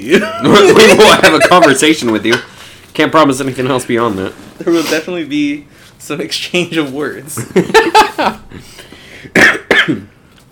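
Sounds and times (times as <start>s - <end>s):
laughter: 0.0s - 2.7s, 7.4s - 8.7s
speech: 0.0s - 10.1s
person coughing: 9.3s - 10.2s.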